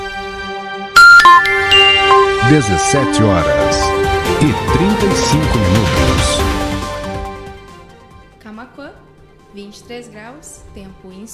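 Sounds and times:
radio station time-signal chime: 1.0s - 6.2s
speech: 2.5s - 6.4s, 9.8s - 11.3s.

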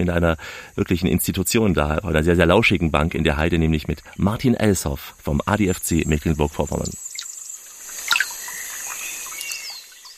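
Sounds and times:
speech: 0.0s - 7.1s
birds chirping and twittering in the Rostocker Heide heath: 2.4s - 10.1s
steady soft trickle of water in the Rostocker Heide heath: 5.8s - 10.1s.

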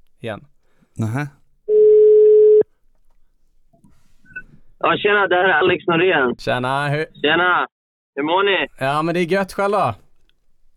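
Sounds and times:
speech: 0.2s - 1.4s, 4.8s - 10.0s
telephone ringback tone while calling: 1.7s - 2.6s.

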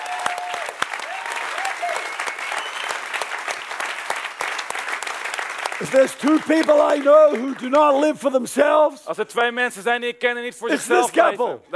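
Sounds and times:
audience applause at a conference gathering: 0.0s - 8.2s
speech: 5.8s - 11.7s.

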